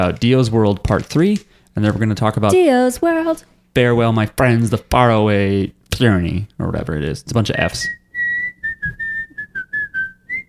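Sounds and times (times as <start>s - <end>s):
speech: 0.0s - 8.0s
person whistling a bouncy cheerful tune: 7.8s - 10.4s.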